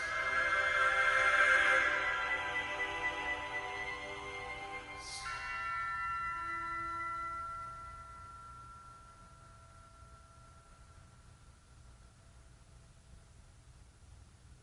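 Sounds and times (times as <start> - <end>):
modern church music piece with sustained tones: 0.0 - 7.4
single bell strike with long shimmering resonance: 0.0 - 11.0.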